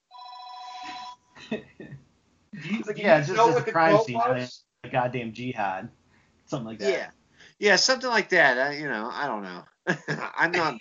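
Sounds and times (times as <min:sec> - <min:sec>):
telephone ringing with a bright electronic trill: 0:00.1 - 0:01.3
laughter: 0:01.4 - 0:01.9, 0:02.6 - 0:05.8, 0:09.9 - 0:10.7
speech: 0:01.5 - 0:10.7.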